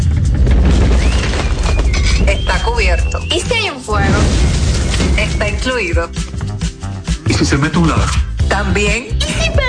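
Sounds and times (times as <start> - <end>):
earthquake rumble sound effect in a home insurance advert: 0.0 - 7.1
crackling debris-like noise: 0.0 - 8.0
speech: 7.4 - 9.6.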